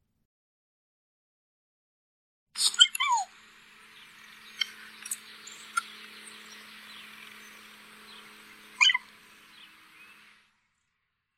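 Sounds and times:
mountain lion giving high bird-like chirping calls: 2.6s - 10.3s
soft hiss: 2.6s - 10.6s.

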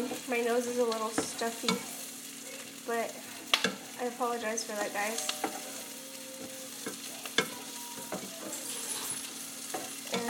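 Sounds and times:
food sauteing in a pan: 0.0s - 10.2s
speech: 0.3s - 2.0s, 2.9s - 5.6s
stirring scrapes and clinks: 4.8s - 10.2s.

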